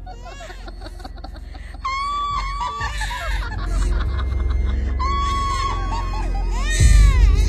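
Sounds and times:
rapid cackling laughter: 0.0 - 6.5
baby crying loudly in a forest: 1.8 - 3.6, 5.0 - 7.4.

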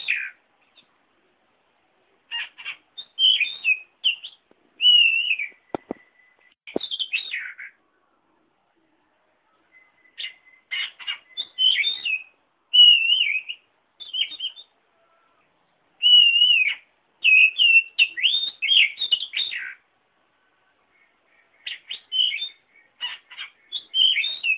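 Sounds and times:
Oriental magpie-robin singing warbled whistles and clipped sharp notes: 0.0 - 0.9, 2.3 - 7.8, 9.5 - 14.8, 16.0 - 19.9, 20.9 - 24.5.

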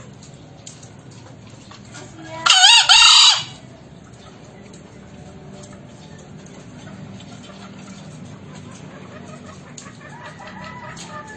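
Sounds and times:
green junglefowl rasping two-syllable crow used as a trapping lure: 2.3 - 3.6, 9.2 - 11.3.

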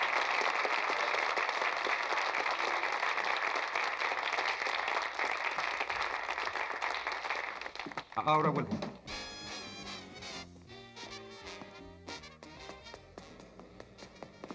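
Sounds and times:
audience applause: 0.0 - 8.7
speech: 8.2 - 8.9.

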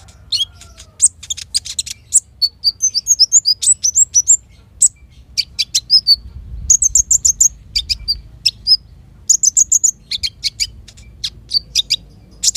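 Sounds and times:
caged Van Hasselt's sunbird singing: 0.0 - 12.5
faint low rumble: 6.0 - 12.4.

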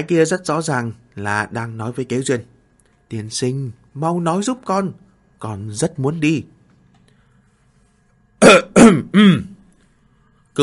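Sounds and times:
speech: 0.0 - 2.5, 3.1 - 6.6, 8.4 - 9.5
dry cough clearing the throat: 8.4 - 9.6.

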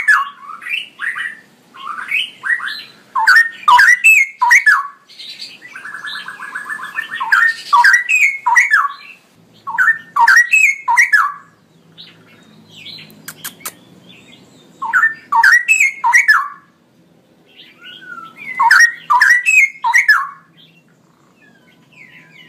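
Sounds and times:
male straw-headed bulbul singing loudly: 0.0 - 22.4
sharp clicks: 13.1 - 13.8.

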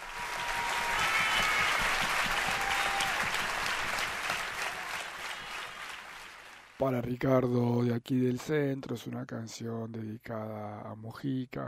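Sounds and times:
large crowd applauding at a live concert: 0.0 - 6.8
speech: 6.8 - 11.6.

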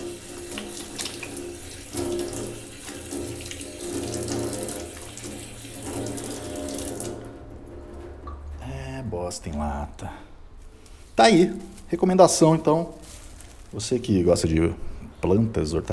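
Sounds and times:
tap water running: 0.0 - 8.4
speech: 9.3 - 10.2, 11.2 - 13.0, 13.7 - 15.9.

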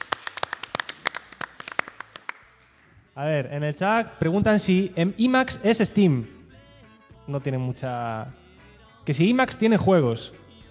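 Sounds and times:
audience applause: 0.0 - 2.7
speech: 3.2 - 6.4, 7.3 - 8.4, 9.0 - 10.4.

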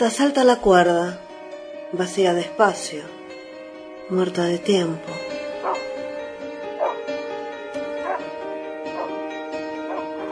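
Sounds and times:
speech: 0.0 - 1.2, 1.9 - 3.2, 4.1 - 5.3
dogs barking: 5.6 - 5.9, 6.8 - 7.0, 8.0 - 8.3, 8.9 - 9.2, 9.8 - 10.2.

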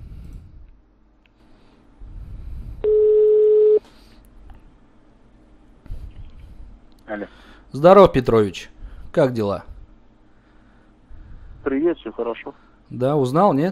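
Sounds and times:
quiet hiss: 0.0 - 13.7
telephone ringback tone while dialing a call: 2.8 - 3.8
speech: 7.1 - 9.7, 11.6 - 13.7.

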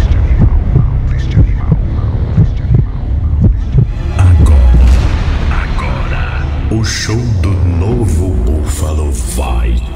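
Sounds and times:
deep throbbing heartbeat sound effect: 0.0 - 5.3
heavier sustained rumble: 0.0 - 9.8.

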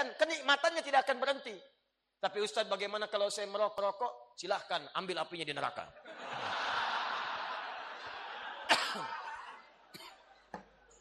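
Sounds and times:
speech: 0.0 - 6.4, 8.9 - 9.2
laughter: 6.0 - 11.0
coughing during a religious lecture: 8.6 - 10.4.

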